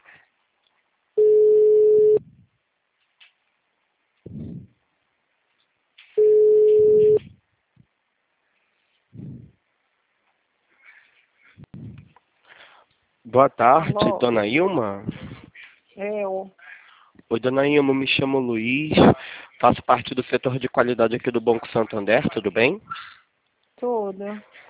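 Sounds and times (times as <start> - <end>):
ringback tone of an outgoing telephone call: 1.2 - 2.2, 6.2 - 7.2
speech: 13.3 - 15.3, 16.0 - 16.6, 17.3 - 23.1, 23.8 - 24.6.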